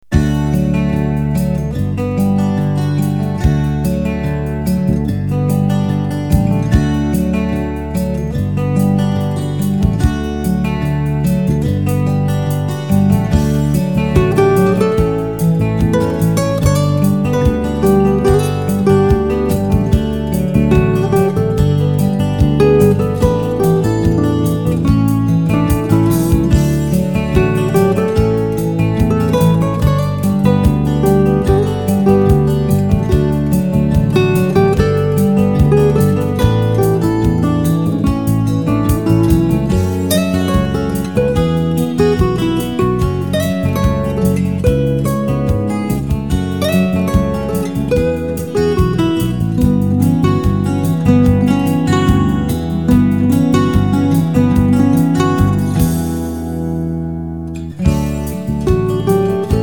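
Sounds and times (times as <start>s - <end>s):
bass: 0.0s - 59.6s
drums: 0.1s - 56.9s, 57.7s - 59.6s.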